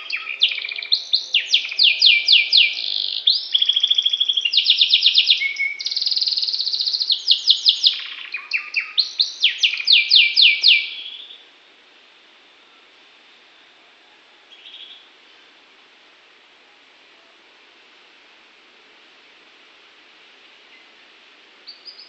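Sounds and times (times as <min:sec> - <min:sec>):
Norwich breed canary singing fast trilled tours: 0:00.0 - 0:11.4.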